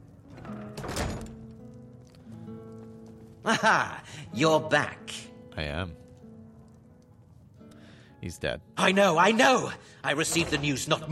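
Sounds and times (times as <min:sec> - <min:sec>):
doors pushed shut into a back room: 0:00.3 - 0:01.5, 0:10.3 - 0:10.9
speech: 0:03.4 - 0:06.0, 0:08.2 - 0:11.1.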